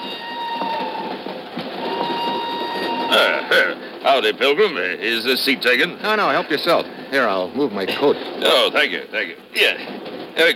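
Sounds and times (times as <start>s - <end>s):
brighter metallic squeal: 0.0s - 1.2s, 1.8s - 3.4s
train rolling along the rails heard from inside the car: 0.0s - 10.5s
speech: 4.2s - 10.5s.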